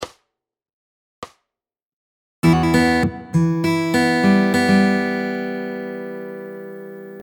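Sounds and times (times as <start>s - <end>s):
fingerpicking lick variation: 2.4s - 7.2s.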